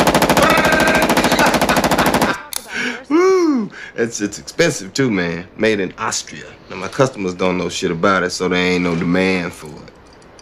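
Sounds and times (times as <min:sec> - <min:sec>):
Steyr AUG rifle firing an automatic burst: 0:00.0 - 0:02.4
laughter: 0:00.4 - 0:03.7
speech: 0:04.0 - 0:10.0.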